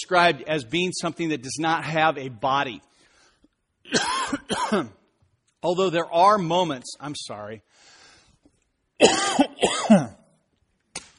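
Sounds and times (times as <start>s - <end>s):
speech: 0.0s - 2.9s, 3.9s - 5.0s, 5.6s - 7.9s, 9.0s - 10.1s
person coughing harsh and throaty: 3.9s - 5.0s, 9.0s - 10.3s.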